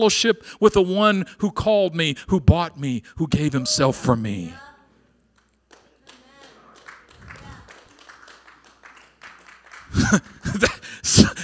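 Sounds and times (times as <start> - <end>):
speech: 0.0 - 4.6, 10.0 - 11.4
scattered half-hearted audience clapping: 5.3 - 11.0.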